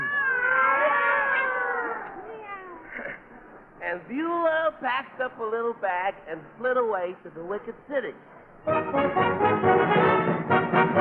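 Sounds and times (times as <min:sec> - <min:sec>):
two alley cats yowling and caterwauling on a back fence: 0:00.0 - 0:02.9
speech: 0:04.0 - 0:10.0.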